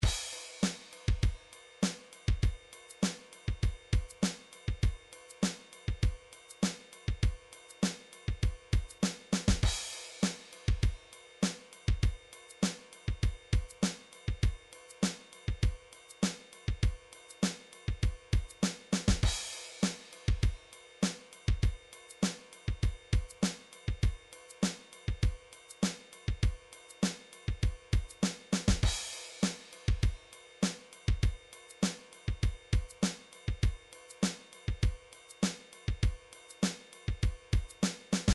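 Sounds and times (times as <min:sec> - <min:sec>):
pop rock MIDI drums: 0:00.0 - 0:38.3.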